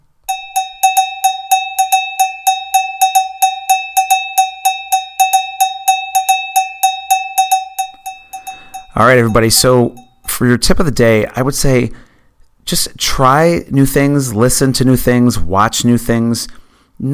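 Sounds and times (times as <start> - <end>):
cowbell played in a steady rhythmic pattern: 0.3 - 10.4
speech: 9.0 - 12.0, 12.7 - 17.1.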